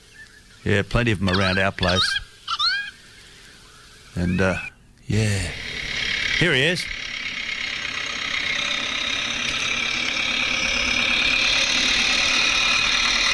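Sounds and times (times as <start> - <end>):
speech: 0.6 - 2.2, 4.2 - 5.7, 6.4 - 7.0
small tractor engine running: 5.3 - 13.3.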